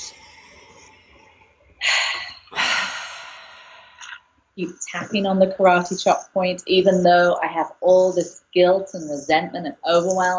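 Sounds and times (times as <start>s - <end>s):
deep breath during a guided tapping relaxation exercise: 0.0s - 4.2s
speech: 4.6s - 10.3s.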